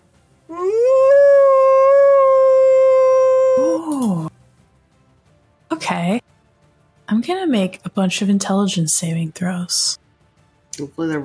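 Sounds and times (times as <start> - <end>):
person imitating a loud dog or wolf howl: 0.5 - 4.3
speech: 7.2 - 10.0, 10.8 - 11.2.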